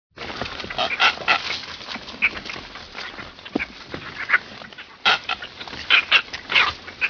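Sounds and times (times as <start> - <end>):
Red-footed booby rasping squawks: 0.6 - 2.4, 3.0 - 7.0.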